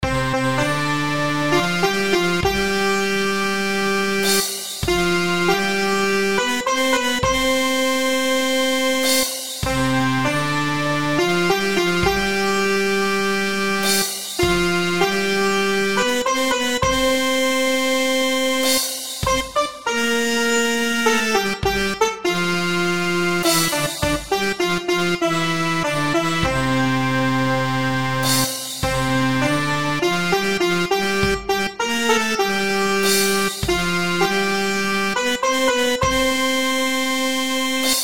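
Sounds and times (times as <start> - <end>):
virtual Indian sitar: 0.0 - 38.0
virtual harmonium: 0.0 - 38.0.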